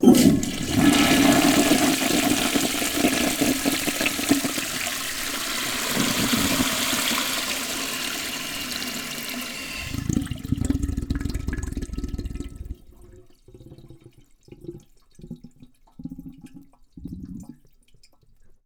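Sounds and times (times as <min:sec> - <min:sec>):
flushometer flushing: 0:00.0 - 0:13.2.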